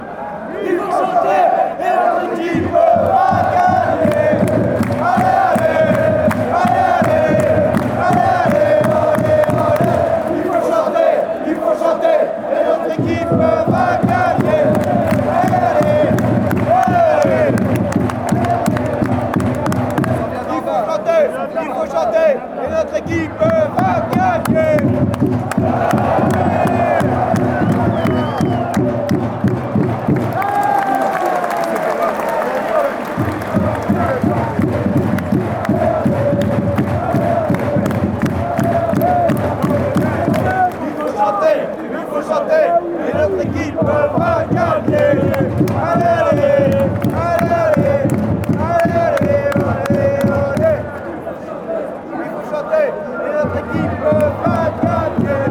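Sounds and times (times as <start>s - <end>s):
people chanting: 0.0s - 55.5s.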